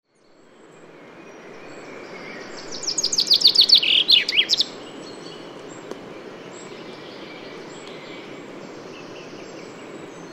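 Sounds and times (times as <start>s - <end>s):
common chaffinch singing: 1.2s - 10.3s.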